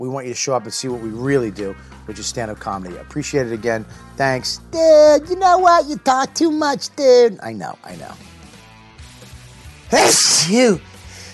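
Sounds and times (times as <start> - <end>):
speech: 0.0 - 8.3, 9.9 - 10.9
person sneezing: 9.9 - 10.7.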